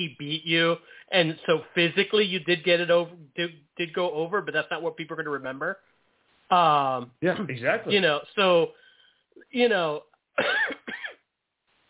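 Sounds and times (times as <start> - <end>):
speech: 0.0 - 8.8, 9.4 - 10.8
man coughing raspily: 10.4 - 11.2.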